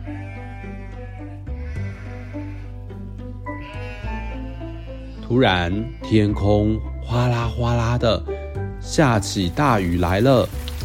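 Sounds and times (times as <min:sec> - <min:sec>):
flock of sheep driven by a herder bleating: 0:00.0 - 0:06.5
speech: 0:05.3 - 0:10.6.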